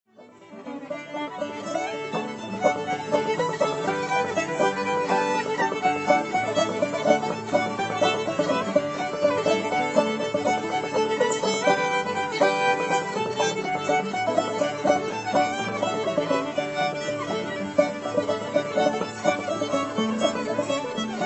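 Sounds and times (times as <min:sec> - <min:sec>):
fiddle playing in the key of D: 0:00.1 - 0:21.2.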